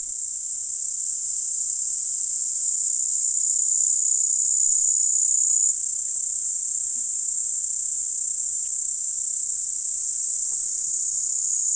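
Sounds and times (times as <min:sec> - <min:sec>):
upland green bush-cricket song: 0:00.0 - 0:11.7.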